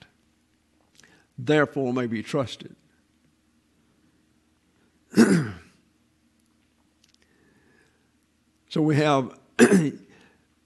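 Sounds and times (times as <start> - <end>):
speech: 1.4 - 2.8, 8.7 - 10.0
person with a bad throat clearing throat: 5.1 - 5.8, 9.6 - 10.0.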